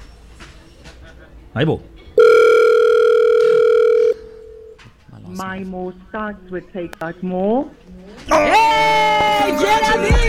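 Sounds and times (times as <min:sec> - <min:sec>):
speech: 0:01.5 - 0:02.0, 0:05.4 - 0:10.2
electronic telephone ringing tone while dialing out: 0:02.2 - 0:04.8.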